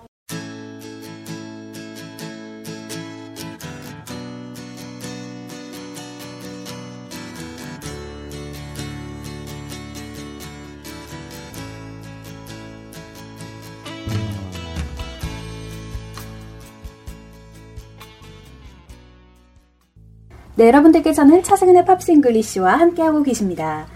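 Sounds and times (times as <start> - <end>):
strummed guitar in a rock-pop song: 0.3 - 20.0
bass in a rock-pop song: 7.2 - 20.8
drums in a rock-pop song: 13.9 - 18.6
speech: 20.6 - 23.9.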